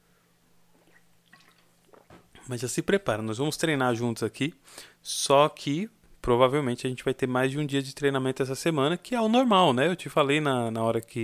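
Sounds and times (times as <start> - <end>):
faint steady hum: 0.0 - 11.2
sipping water: 0.7 - 2.5
speech: 2.5 - 11.2.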